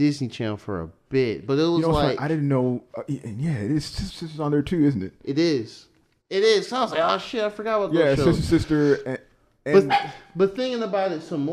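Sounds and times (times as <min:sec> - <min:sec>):
speech: 0:00.0 - 0:11.5
dog barking in tonal yelps: 0:09.8 - 0:10.4.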